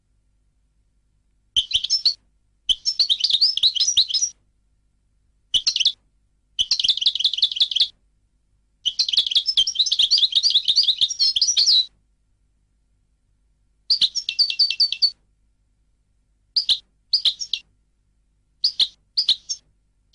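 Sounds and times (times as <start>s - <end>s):
European goldfinch twittering song: 1.6s - 4.3s, 6.6s - 7.9s, 8.9s - 11.9s, 13.9s - 15.1s, 16.6s - 17.6s, 18.6s - 19.6s.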